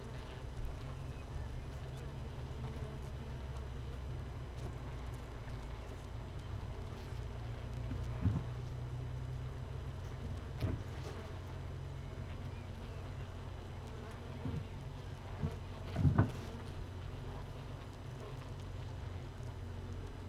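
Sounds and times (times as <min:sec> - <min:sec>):
queenless honey bee hive humming: 0:00.0 - 0:20.2
short louder bumps and knocks in honey bee hive: 0:07.8 - 0:08.6, 0:15.4 - 0:16.6.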